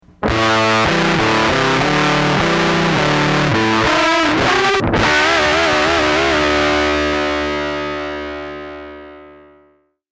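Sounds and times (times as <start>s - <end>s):
fuzz distorted guitar: 0.0s - 9.8s.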